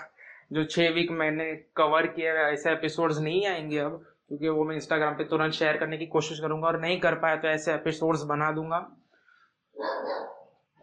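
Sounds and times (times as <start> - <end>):
speech: 0.5 - 9.0
dog barking: 9.8 - 10.5.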